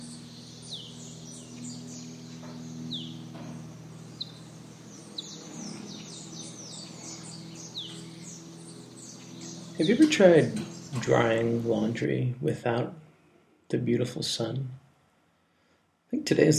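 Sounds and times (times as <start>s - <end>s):
birds chirping and singing: 0.0s - 12.3s
low constant outdoor hum: 0.0s - 16.5s
speech: 9.8s - 13.0s, 13.7s - 14.8s, 16.2s - 16.5s.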